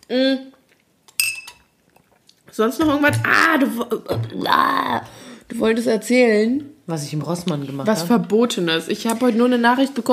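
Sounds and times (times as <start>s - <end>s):
speech: 0.1s - 0.6s, 2.5s - 10.1s
glasses clinking in a toast: 1.2s - 1.7s.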